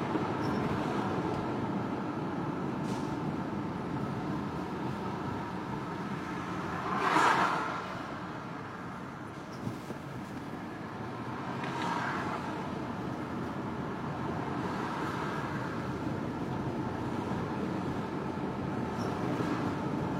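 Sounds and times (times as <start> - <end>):
droning road noise from inside a moving car: 0.0 - 20.1.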